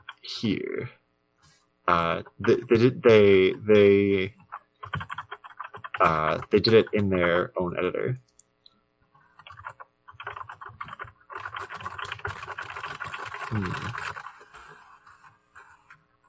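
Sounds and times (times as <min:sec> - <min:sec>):
speech: 0:00.2 - 0:01.0, 0:01.9 - 0:05.1, 0:06.0 - 0:08.3, 0:13.5 - 0:14.0
rapid typing of gibberish on a computer keyboard: 0:02.0 - 0:07.5, 0:09.2 - 0:16.2.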